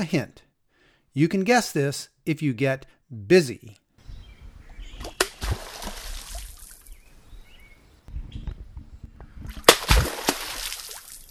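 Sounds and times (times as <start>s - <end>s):
speech: 0.0s - 0.4s, 1.2s - 3.8s
American beaver smacking its tail on creek water as it submerges: 4.0s - 11.2s.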